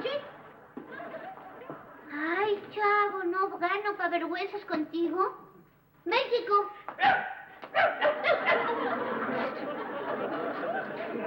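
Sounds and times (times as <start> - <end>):
laughter: 0.8 - 2.0, 8.1 - 11.2
speech: 2.2 - 9.7
person barking in imitation of a dog: 7.0 - 8.7.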